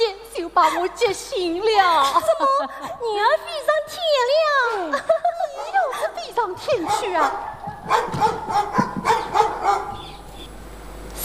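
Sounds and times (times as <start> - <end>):
speech: 0.6 - 5.3, 6.2 - 9.8
laughter: 1.9 - 3.4, 4.6 - 7.9
dog barking fiercely at night: 5.5 - 10.2.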